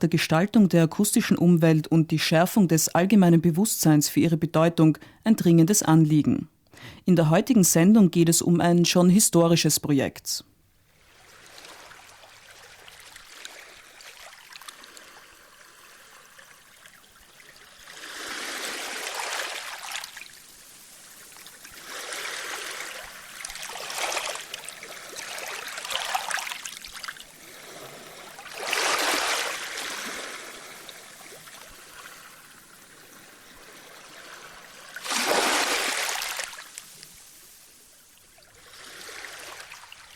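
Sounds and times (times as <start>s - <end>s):
speech: 0.0s - 10.5s
low watery murmur of Pacific Ocean water: 10.8s - 40.1s
Pacific Ocean water off Vancouver washing in and receding: 10.9s - 40.1s.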